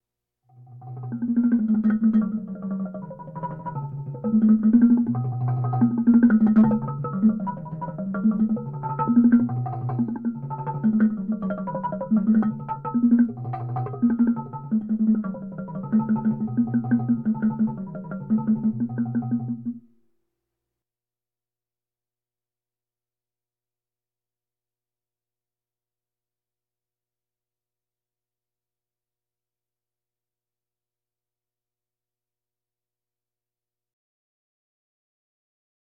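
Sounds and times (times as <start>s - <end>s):
bongos: 0.6s - 20.0s.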